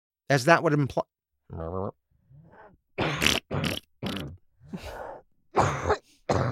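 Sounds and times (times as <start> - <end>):
speech: 0.3 - 2.0
woman coughing: 5.6 - 6.5.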